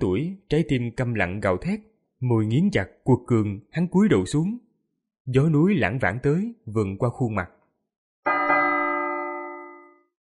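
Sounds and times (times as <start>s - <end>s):
speech: 0.0s - 4.6s, 5.3s - 7.6s
resonant bell ringing near a mountain peak: 8.3s - 10.2s.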